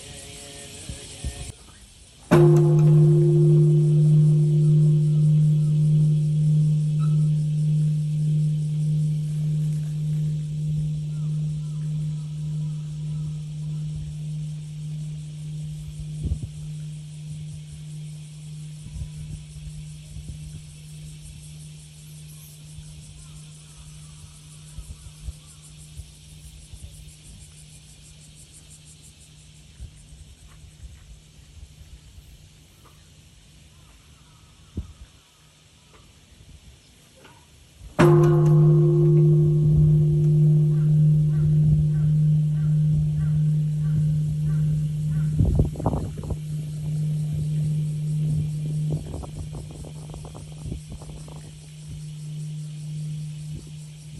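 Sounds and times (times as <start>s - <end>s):
solemn peace bell dedicated to atomic bombing victims tolling: 2.3s - 25.2s, 38.0s - 54.1s.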